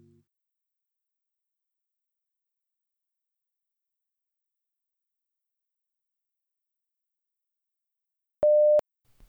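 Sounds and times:
electronic disconnection tone of a call dropping out on mobile data: 8.5s - 8.8s.

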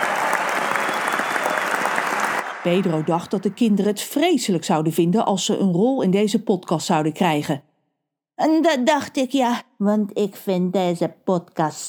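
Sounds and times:
group applause: 0.0s - 3.7s
speech: 2.6s - 7.7s, 8.4s - 11.8s.

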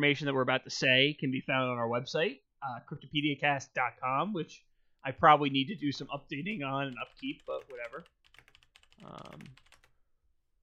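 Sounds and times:
speech: 0.0s - 8.2s, 9.0s - 9.7s
typing on a computer keyboard: 6.5s - 9.9s.

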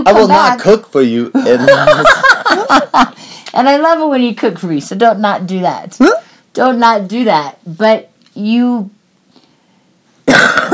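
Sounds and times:
speech: 0.0s - 9.0s, 10.3s - 10.7s
laughter: 1.4s - 3.1s
harsh hacking cough: 10.2s - 10.7s.

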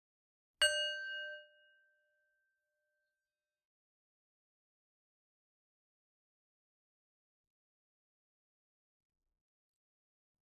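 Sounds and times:
single meditation bell struck: 0.6s - 2.2s.

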